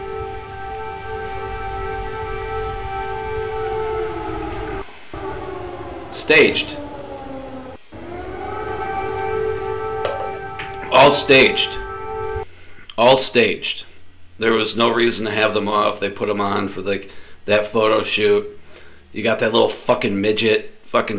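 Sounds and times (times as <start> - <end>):
air raid siren wailing: 0.0 - 12.5
speech: 6.2 - 6.8, 11.0 - 11.8, 13.0 - 21.1.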